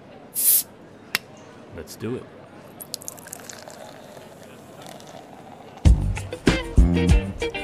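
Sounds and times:
bottle opening with fizzing hiss: 0.4s - 0.7s, 2.8s - 5.9s
speech: 1.8s - 2.4s, 7.0s - 7.5s
bottle popping open: 2.8s - 5.3s.

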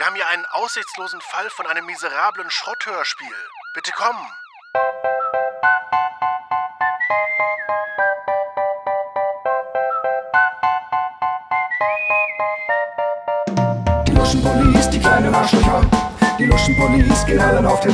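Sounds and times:
speech: 0.0s - 5.1s, 15.4s - 17.9s
bright upbeat podcast theme tune with whistle-like siren-ish melody: 4.7s - 17.9s.

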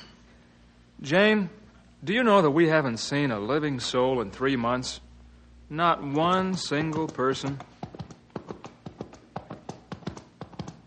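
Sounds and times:
speech: 1.0s - 5.1s, 5.7s - 7.7s
horse hooves clip-clopping: 6.1s - 10.8s.

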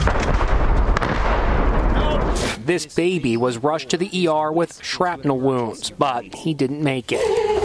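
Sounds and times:
artillery fire during fighting: 0.0s - 2.6s
speech: 2.7s - 7.5s.

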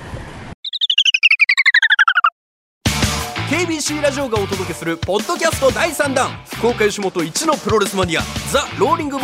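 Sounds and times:
travel transition sound effect of descending chirping beeps: 0.6s - 2.4s
speech: 3.6s - 9.2s.

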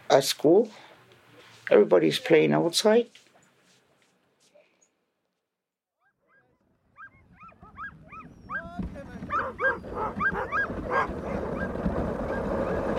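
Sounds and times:
speech: 0.1s - 0.8s, 1.7s - 3.2s
sled dog team yelping and whimpering on snowy tundra: 6.2s - 12.9s.

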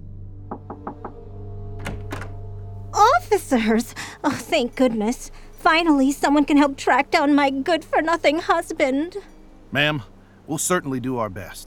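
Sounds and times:
steady low hum: 0.0s - 10.3s
speech: 0.5s - 0.8s, 3.3s - 11.6s
knocking on a door: 0.5s - 1.2s.

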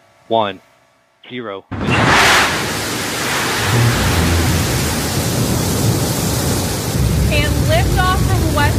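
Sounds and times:
speech: 0.3s - 1.8s, 7.3s - 8.7s
rocket engine roaring at liftoff: 1.7s - 8.7s.

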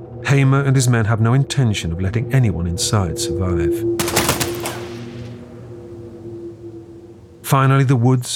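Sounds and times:
speech: 0.2s - 4.4s, 7.5s - 8.3s
steady low hum: 2.9s - 8.0s
fusillade of gunfire: 4.0s - 5.5s.

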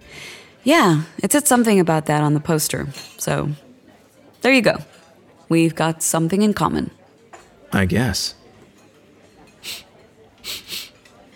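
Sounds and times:
speech: 0.6s - 3.6s, 4.4s - 7.0s, 7.7s - 8.4s, 9.6s - 10.6s
repeated nasal sniffing: 9.6s - 9.8s, 10.4s - 10.9s.

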